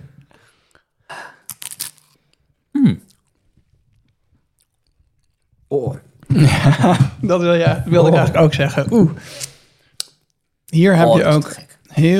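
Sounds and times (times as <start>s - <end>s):
person biting and chewing cheese: 1.4s - 5.7s
appreciative vocal sounds: 2.8s - 3.2s
laughter: 6.3s - 9.2s
speech: 6.6s - 9.5s, 10.7s - 12.1s.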